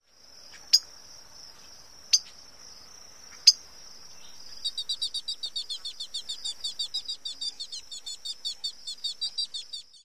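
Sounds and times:
bird pit calls: 0:04.2 - 0:10.0.

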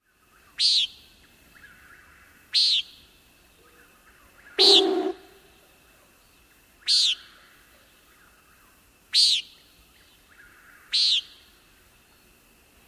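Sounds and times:
Common Nighthawk peent calls: 0:00.4 - 0:05.6, 0:06.8 - 0:08.4, 0:09.1 - 0:11.6.

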